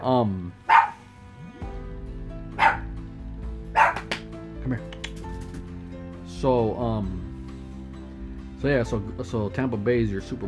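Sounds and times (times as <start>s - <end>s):
speech: 0.0s - 0.6s, 6.4s - 7.2s, 8.6s - 10.4s
dog barking: 0.7s - 1.0s, 2.6s - 2.9s, 3.7s - 4.1s
steady low hum: 1.0s - 4.5s.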